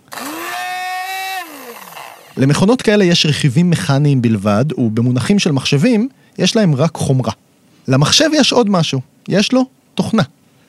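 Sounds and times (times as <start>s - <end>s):
electric blender motor running: 0.0s - 2.4s
speech: 2.4s - 10.4s.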